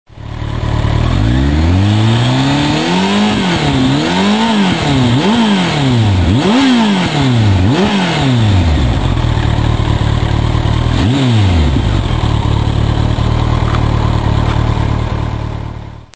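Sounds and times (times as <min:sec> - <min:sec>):
ZX14R motorcycle engine: 0:00.1 - 0:16.1.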